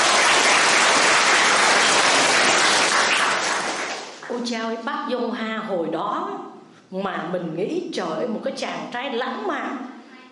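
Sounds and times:
crowd clapping loudly: 0.0 - 4.3
speech: 4.5 - 9.9.

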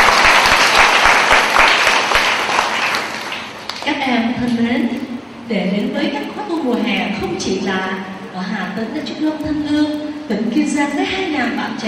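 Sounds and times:
large audience of young people applauding at a Buddhist summer retreat: 0.0 - 3.9
speech: 4.1 - 11.8.

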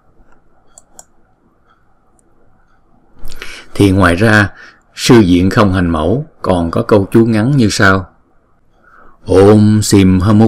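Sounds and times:
low steady hiss: 0.0 - 10.4
computer mouse clicks on a link: 0.2 - 3.4
speech: 3.8 - 8.1, 9.2 - 10.4.

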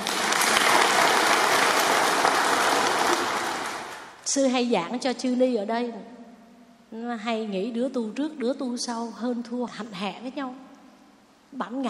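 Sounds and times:
audience applauding: 0.0 - 4.2
speech: 4.4 - 6.2, 6.9 - 10.6, 11.5 - 11.8.

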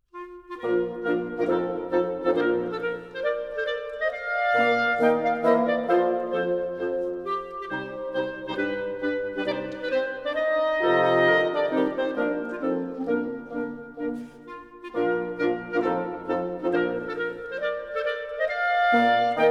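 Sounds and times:
march for two clarinets, two horns and two bassoons in B flat major: 0.1 - 19.5.

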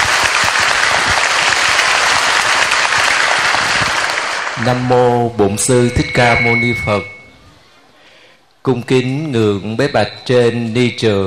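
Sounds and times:
large crowd applauding: 0.0 - 5.0
speech: 4.6 - 7.2, 8.6 - 11.2.

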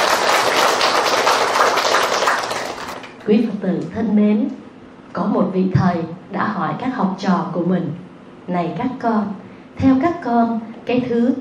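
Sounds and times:
crowd applauding: 0.0 - 3.2
speech: 3.2 - 4.6, 5.2 - 11.3.

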